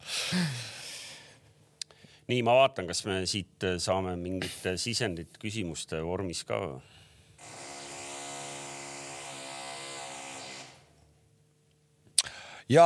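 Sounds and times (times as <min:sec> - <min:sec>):
speech: 0:00.3 - 0:00.6, 0:02.3 - 0:07.0, 0:12.7 - 0:12.8
power drill whirring: 0:07.4 - 0:10.9.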